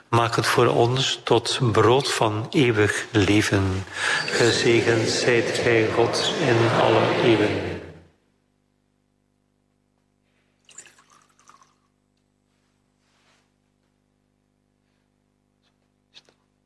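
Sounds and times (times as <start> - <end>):
speech: 0.1 - 7.7
laughter: 3.8 - 8.1
water poured into a chalice of wine during church liturgy: 10.6 - 12.0.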